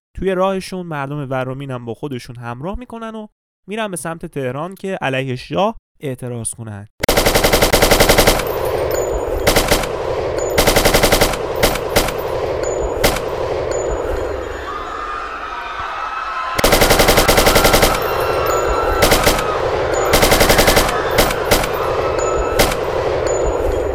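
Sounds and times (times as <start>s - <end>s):
speech: 0.2s - 7.5s
machine gun fire shooting at protesters: 7.0s - 13.8s, 16.6s - 23.4s
metallic pings: 8.0s - 15.1s, 17.3s - 23.9s.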